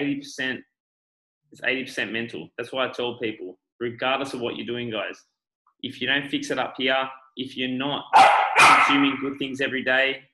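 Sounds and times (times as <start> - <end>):
speech: 0.0 - 0.7, 1.5 - 10.3
dog barking: 8.1 - 9.1.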